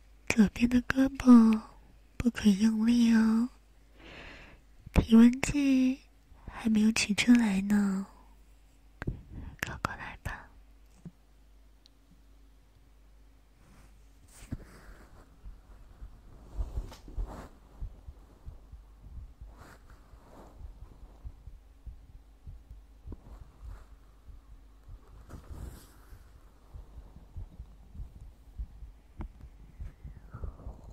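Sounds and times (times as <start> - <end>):
faint hum: 0.0 - 30.9
speech: 0.4 - 3.6, 4.9 - 6.0, 6.6 - 8.1
brushing rustling noises: 13.5 - 30.1
heartbeat: 14.2 - 30.9.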